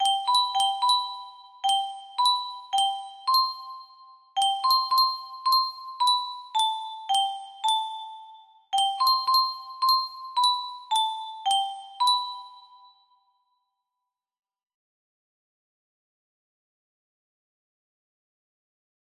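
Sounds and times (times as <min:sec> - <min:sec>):
music box melody: 0:00.0 - 0:13.2.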